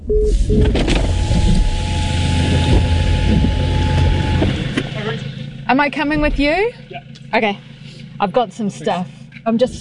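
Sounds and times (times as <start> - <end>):
short electronic beeps: 0.0 - 4.4
faint whining tone: 0.0 - 8.3
car engine and road noise heard from inside the vehicle: 0.0 - 9.7
speech: 0.3 - 1.6, 5.7 - 9.7.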